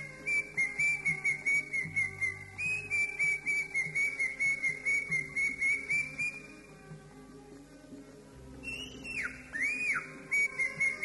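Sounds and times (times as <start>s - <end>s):
greater green leafbird giving whistled notes: 0.2s - 6.6s, 8.6s - 11.0s.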